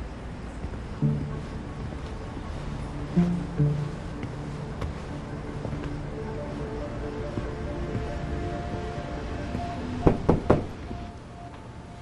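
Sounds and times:
steady low rumble: 0:00.1 - 0:11.8
hard knocks on a door: 0:10.1 - 0:10.8.

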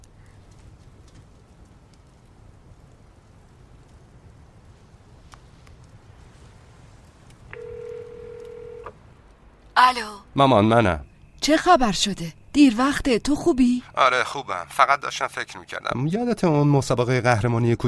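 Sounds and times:
faint clicks: 0:00.0 - 0:02.4, 0:05.2 - 0:06.0, 0:07.0 - 0:09.7
low constant hiss: 0:00.0 - 0:17.8
telephone beep as a call is placed: 0:07.6 - 0:08.9
speech: 0:09.8 - 0:17.8.

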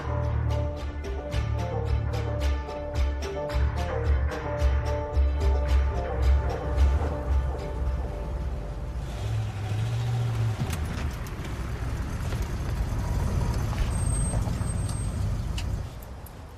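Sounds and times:
car engine rumbling at night: 0:00.0 - 0:16.5
clanks as car pulls up: 0:09.4 - 0:16.5.

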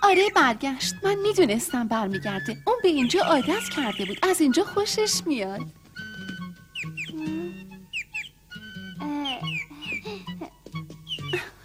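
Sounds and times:
caged bird chirping: 0:00.0 - 0:01.4, 0:02.8 - 0:04.4, 0:06.6 - 0:10.2, 0:11.0 - 0:11.5
speech: 0:00.1 - 0:05.8.

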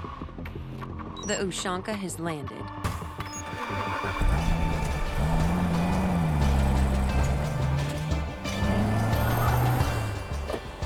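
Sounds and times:
speech: 0:01.3 - 0:02.7
one-of-a-kind car engine revving gently: 0:04.0 - 0:10.7.

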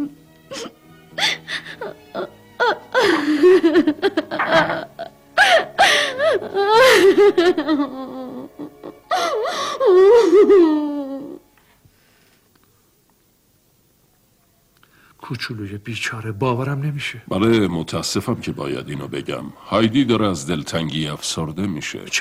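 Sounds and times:
young girl sobbing with gasping breaths and wavering wails: 0:00.5 - 0:11.4
speech: 0:15.4 - 0:22.1.

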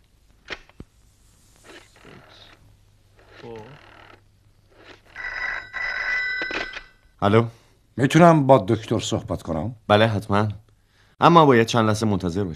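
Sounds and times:
rustling: 0:00.0 - 0:06.8
person murmuring: 0:03.4 - 0:03.8
telephone ringing with a bright trilling tone: 0:04.8 - 0:07.1
speech: 0:07.2 - 0:10.6, 0:11.2 - 0:12.5.

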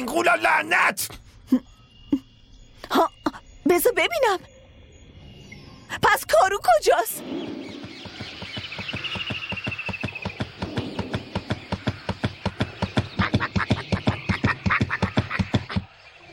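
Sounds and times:
speech: 0:00.1 - 0:01.7, 0:02.9 - 0:04.5, 0:05.9 - 0:07.7
bird calling in harsh quack-like notes: 0:06.8 - 0:16.2.

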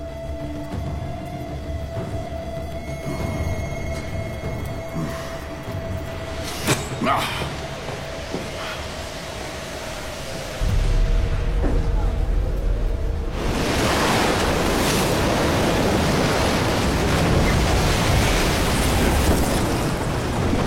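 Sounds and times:
roaring wind of a storm at sea: 0:00.0 - 0:20.6
heavy surf crashing waves of a storm at sea: 0:04.9 - 0:20.6
low rumble: 0:10.1 - 0:17.8.

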